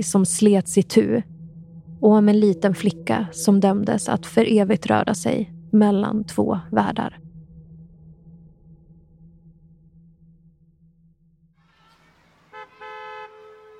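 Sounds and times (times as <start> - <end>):
speech: 0.0 - 1.3, 2.0 - 7.2
car horn honks in a school parking lot: 11.7 - 13.7.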